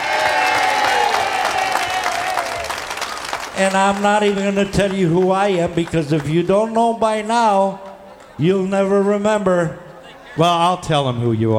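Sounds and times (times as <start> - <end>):
scattered cheers: 0.0 - 5.5
crowd applauding: 0.0 - 8.6
speech: 3.6 - 7.8, 8.4 - 9.8, 10.4 - 11.5.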